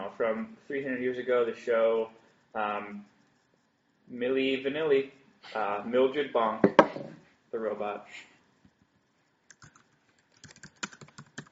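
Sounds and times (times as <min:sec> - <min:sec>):
speech: 0:00.1 - 0:03.1, 0:04.1 - 0:08.3
computer keyboard typing: 0:09.5 - 0:11.5.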